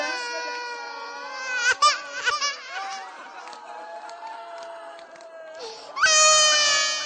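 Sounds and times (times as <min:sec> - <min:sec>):
baby frightened by a crowd crying: 0:00.0 - 0:03.2, 0:05.6 - 0:07.0
laughter: 0:01.3 - 0:05.6.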